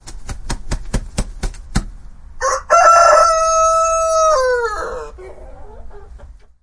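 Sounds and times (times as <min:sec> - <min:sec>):
rooster crowing: 0:02.4 - 0:05.9.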